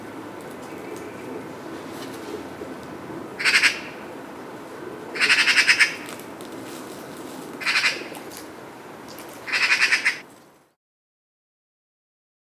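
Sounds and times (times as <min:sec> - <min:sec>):
magpie harsh rattling chatter: 0:05.2 - 0:06.0, 0:07.6 - 0:08.1, 0:09.5 - 0:10.2.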